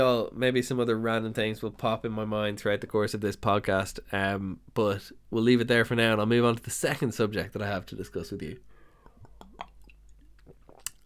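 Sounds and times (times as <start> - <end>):
speech: 0.0 - 8.7
sipping water: 8.8 - 11.0.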